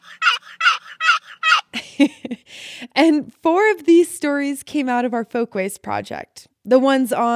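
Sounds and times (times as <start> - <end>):
turkey call making gobbling turkey sounds: 0.0 - 1.7
speech: 2.0 - 2.4, 3.0 - 7.3.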